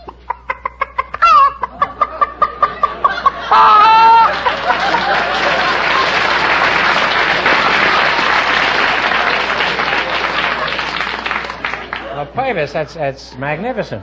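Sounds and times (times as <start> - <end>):
person imitating a chicken cackling: 0.0 - 2.9, 3.5 - 4.3
audience applauding: 3.5 - 12.2
speech: 12.5 - 14.0.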